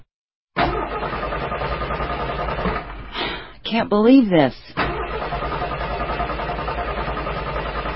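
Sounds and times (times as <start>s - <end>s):
car engine rumbling then sputtering as the car breaks down: 0.6s - 3.1s, 4.8s - 7.9s
speech: 3.7s - 4.8s.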